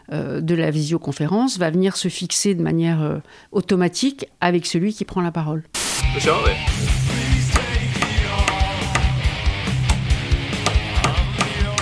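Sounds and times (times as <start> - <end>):
speech: 0.1 - 7.2
microphone used to hammer a nail: 7.5 - 11.8.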